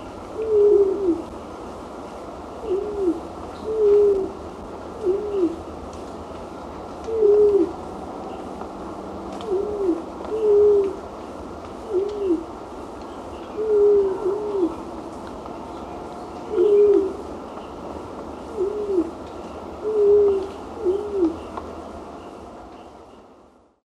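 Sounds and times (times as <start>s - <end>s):
constant background hiss: 0.0s - 23.8s
white-throated quail-dove deep hollow coos in Ecuador: 0.3s - 1.3s, 2.6s - 4.4s, 5.0s - 5.6s, 7.1s - 7.8s, 9.4s - 11.0s, 11.8s - 12.5s, 13.5s - 14.8s, 16.4s - 17.2s, 18.5s - 19.2s, 19.8s - 21.6s.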